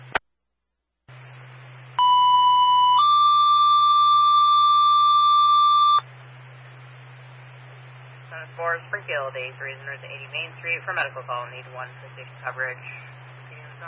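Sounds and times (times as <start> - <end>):
low radio hum: 1.1 - 13.8
two-tone dispatch alert: 2.0 - 6.0
radio static: 8.2 - 13.8
speech: 8.9 - 13.1.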